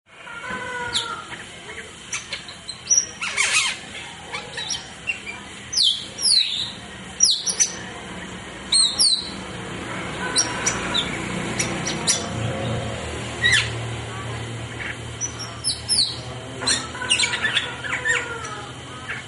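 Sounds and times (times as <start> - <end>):
starling song: 0.2 - 19.2.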